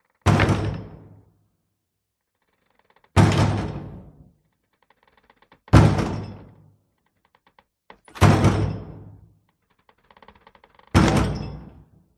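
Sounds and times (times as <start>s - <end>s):
battering ram hitting door: 0.2s - 1.2s, 3.1s - 4.2s, 5.7s - 6.6s, 8.0s - 9.2s, 10.9s - 11.9s.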